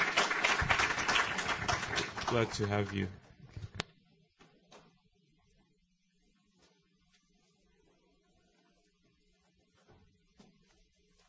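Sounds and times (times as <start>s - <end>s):
audience applause welcoming visiting attendees: 0.0s - 3.2s
speech: 2.3s - 3.2s.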